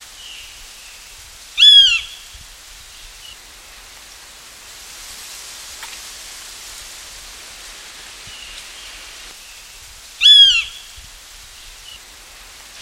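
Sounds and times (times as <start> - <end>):
Lesser Yellownape Picus chlorolophus call: 1.6 - 2.3, 10.2 - 10.9.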